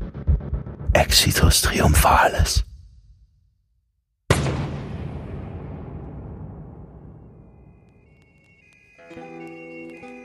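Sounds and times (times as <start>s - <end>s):
speech: 1.0s - 2.7s
gunshot: 4.3s - 7.6s.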